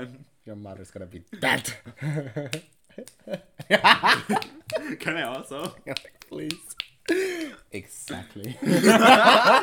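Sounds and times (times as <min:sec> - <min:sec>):
speech: 0:00.0 - 0:09.6
laughter: 0:01.9 - 0:06.2, 0:08.5 - 0:09.6
finger snaps: 0:02.5 - 0:03.3, 0:04.3 - 0:08.6.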